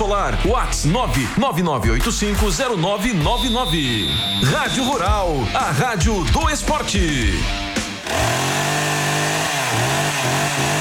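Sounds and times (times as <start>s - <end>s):
speech: 0.1s - 8.5s
chainsaw engine roaring: 3.4s - 10.7s.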